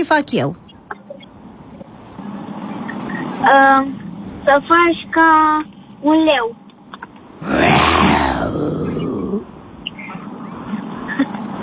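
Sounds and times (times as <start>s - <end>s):
speech: 0.0s - 0.6s, 3.4s - 6.6s
person imitating a lion's growl: 7.4s - 9.5s.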